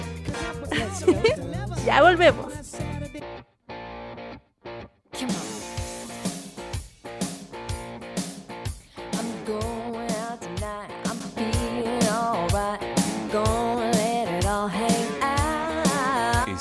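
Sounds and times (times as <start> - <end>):
funky pop song with driving beat and effects-laden instruments: 0.0 - 4.4, 5.1 - 16.5
laughter: 0.2 - 2.3
speech: 1.8 - 2.5.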